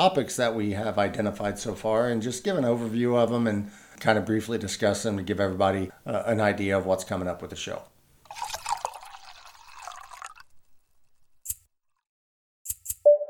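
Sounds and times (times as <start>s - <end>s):
speech: 0.0s - 8.6s
Guinness beer pouring into a glass: 8.2s - 10.7s
sharp clicks: 12.7s - 13.1s.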